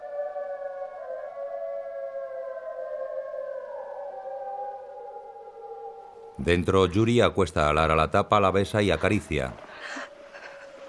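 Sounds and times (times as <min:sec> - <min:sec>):
several wolves howling outside: 0:00.0 - 0:06.4, 0:08.8 - 0:10.8
speech: 0:06.4 - 0:10.0.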